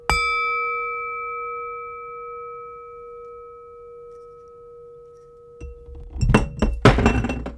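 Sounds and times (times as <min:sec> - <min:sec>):
knocked beer glass ringing: 0:00.0 - 0:07.5
beer glass clattering and thudding as it tips over: 0:05.6 - 0:07.5.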